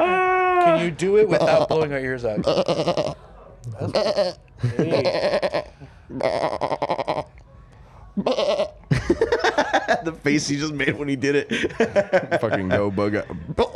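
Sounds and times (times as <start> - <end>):
laughter: 0.6 - 3.2, 3.8 - 5.8, 8.9 - 13.7
speech: 0.7 - 7.4, 8.2 - 13.7
man imitating goat bleats into a microphone: 1.3 - 3.2, 3.8 - 7.3, 8.2 - 8.8.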